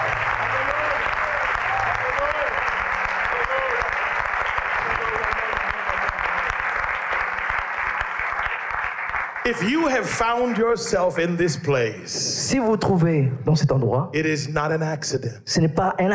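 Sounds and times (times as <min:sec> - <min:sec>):
large audience applauding: 0:00.0 - 0:11.4
speech: 0:09.5 - 0:16.1.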